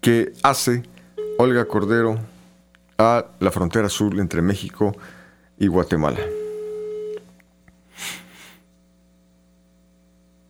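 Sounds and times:
speech: 0.0s - 2.3s, 3.0s - 6.4s
telephone call tone, call going to voicemail: 1.2s - 1.9s, 6.2s - 7.2s
airy hissing bursts: 7.9s - 8.6s.

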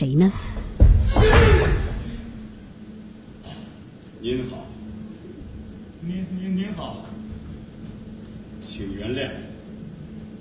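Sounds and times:
speech: 0.0s - 0.6s, 4.2s - 4.8s, 6.0s - 7.2s, 8.6s - 9.5s
room door being pushed open: 0.8s - 2.0s.

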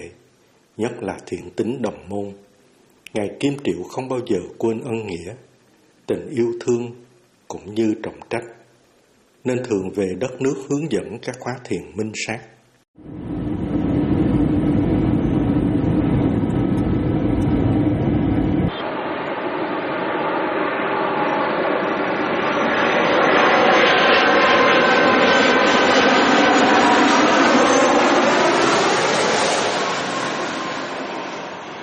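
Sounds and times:
speech: 0.8s - 2.5s, 3.1s - 5.5s, 6.1s - 8.6s, 9.4s - 13.2s
airplane arriving at Tan Son Nhat airport in Saigon: 13.0s - 31.8s.

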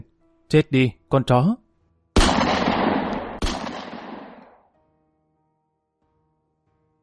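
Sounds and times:
speech: 0.5s - 1.6s
handgun shots in an abandoned container yard: 2.2s - 4.6s.

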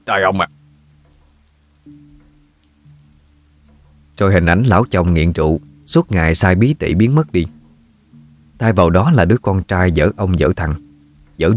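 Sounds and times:
rain falling as a faint steady hiss: 0.0s - 11.5s
speech: 0.1s - 0.6s, 1.8s - 2.1s, 4.2s - 7.6s, 8.6s - 10.8s, 11.4s - 11.5s.

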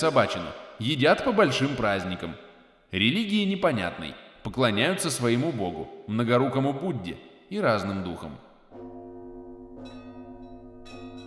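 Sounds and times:
speech: 0.0s - 8.9s
church bells ringing for mass amid gusting wind and snow: 8.7s - 11.2s.

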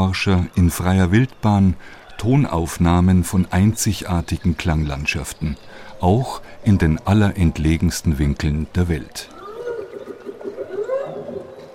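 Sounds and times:
speech: 0.0s - 9.4s
whale song off the Alaska coast: 9.3s - 11.7s.

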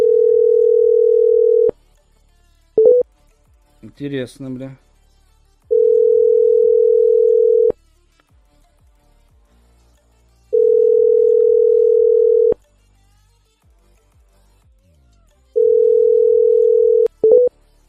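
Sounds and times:
telephone ringback tone while a number is dialed: 0.0s - 1.8s, 2.8s - 3.0s, 5.7s - 7.8s, 10.6s - 12.6s, 15.6s - 17.5s
speech: 4.0s - 4.9s.

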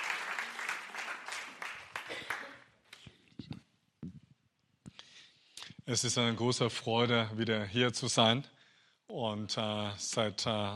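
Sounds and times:
audience applause at a church gathering: 0.0s - 2.6s
speech: 5.9s - 8.6s, 9.2s - 10.7s.

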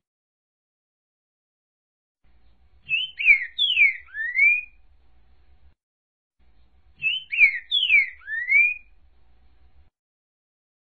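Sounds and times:
green-winged saltator whistling: 2.9s - 4.8s, 7.0s - 8.9s.

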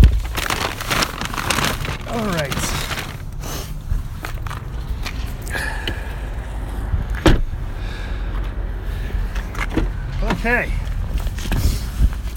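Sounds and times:
steady low outdoor rumble: 0.0s - 12.3s
car rear door handling clunks and rattles: 7.1s - 7.5s
car rear door latch click: 7.2s - 7.4s.

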